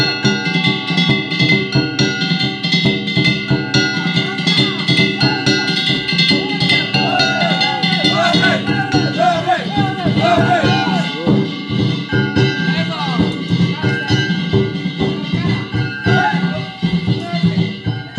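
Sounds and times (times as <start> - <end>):
bells or gongs ringing on a danjiri festival float in Osaka: 0.0 - 18.1
booming drums on a danjiri festival float: 0.0 - 18.1
voices shouting and chanting at a danjiri festival: 3.7 - 18.1.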